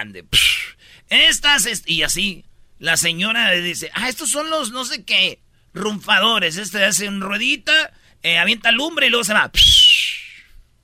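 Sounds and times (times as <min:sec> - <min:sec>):
speech: 0:00.0 - 0:10.1
voice imitating a whistling chiflador firework: 0:09.6 - 0:10.6.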